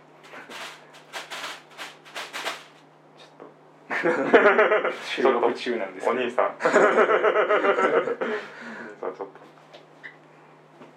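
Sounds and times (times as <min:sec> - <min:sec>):
faint steady hum: 0:00.0 - 0:10.9
plastic bag crinkling and rustling: 0:00.3 - 0:02.8
laughter: 0:03.9 - 0:05.2, 0:06.6 - 0:09.4
speech: 0:04.0 - 0:09.4.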